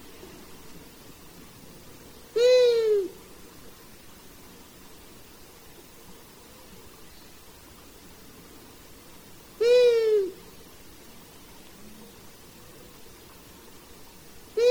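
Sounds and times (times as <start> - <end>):
quiet hiss: 0.0 - 14.6
Long-eared owl giving a drawn-out nasal call: 2.4 - 3.2, 9.6 - 10.4.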